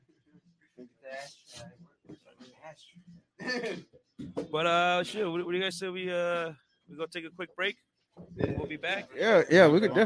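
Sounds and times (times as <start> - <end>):
speech: 2.7 - 7.8, 8.4 - 10.0
person coughing and hacking: 3.4 - 3.8
throat clearing: 3.4 - 3.8.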